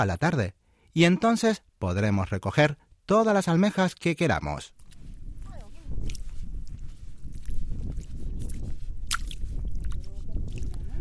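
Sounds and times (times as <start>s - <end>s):
speech: 0.0s - 4.8s
bare feet squelching through soft wet marsh mud by the sea: 4.7s - 10.9s.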